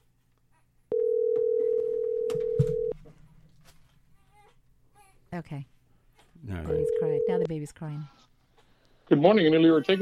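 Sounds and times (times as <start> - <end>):
faint room noise: 0.0 - 10.0
telephone dial tone while placing a call: 0.9 - 3.0
speech: 5.3 - 5.7, 6.4 - 8.3, 9.1 - 10.0.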